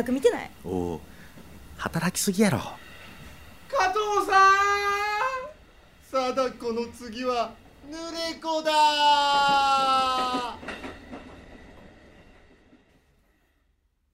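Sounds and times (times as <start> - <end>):
speech: 0.0 - 1.1, 1.8 - 2.8, 3.9 - 4.8, 6.1 - 10.7
train rumbling past: 0.1 - 13.8.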